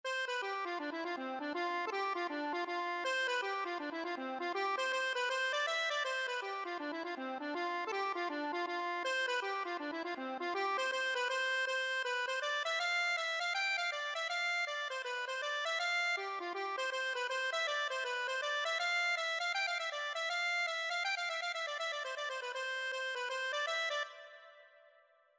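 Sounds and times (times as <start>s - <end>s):
accordion: 0.0s - 24.8s.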